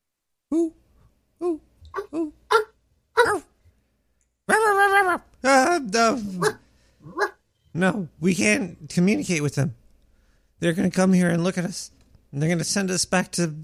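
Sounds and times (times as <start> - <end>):
speech: 0.5 - 0.8, 1.4 - 2.6, 5.8 - 6.6, 7.8 - 9.8, 10.6 - 13.6
dogs barking: 2.0 - 3.5, 6.3 - 7.4.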